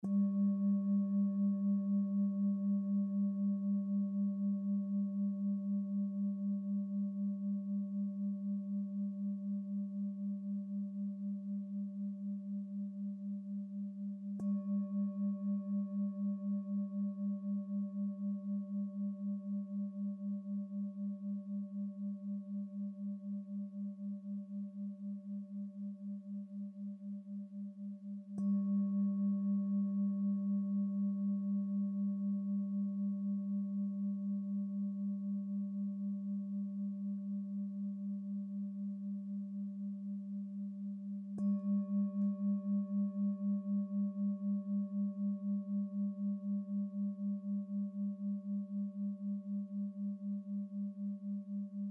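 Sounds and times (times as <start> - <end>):
background singing bowls: 0.0 - 51.8.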